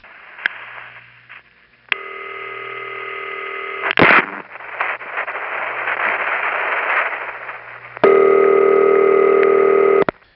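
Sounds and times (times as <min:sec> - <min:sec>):
faint hiss: 0:00.0 - 0:02.2, 0:03.8 - 0:08.1
burst of static and noise: 0:00.0 - 0:10.3
telephone intercept trunk ringtone: 0:02.0 - 0:03.8, 0:08.0 - 0:10.1.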